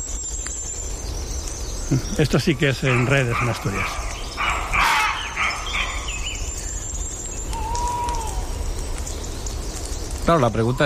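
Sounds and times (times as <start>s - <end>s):
faint bird calls: 0.4s - 10.8s
speech: 1.9s - 4.0s, 10.3s - 10.8s
harsh hoarse barks of a fox or roe deer: 2.8s - 6.1s
soft whistle-like call: 4.8s - 8.6s, 10.3s - 10.8s.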